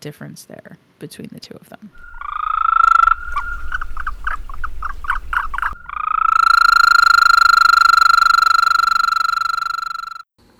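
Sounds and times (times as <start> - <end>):
speech: 0.0 - 2.2
Eastern American toad giving a long musical trill: 2.0 - 10.2.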